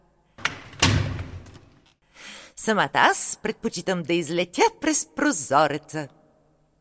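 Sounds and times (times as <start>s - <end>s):
inner door closing with a heavy thud: 0.4s - 1.7s
speech: 2.6s - 6.2s.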